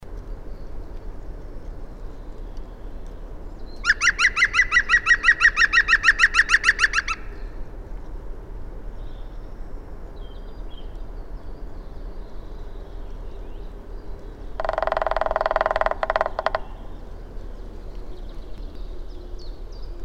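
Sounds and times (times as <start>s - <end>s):
green woodpecker calling: 3.7s - 7.6s, 14.1s - 19.4s.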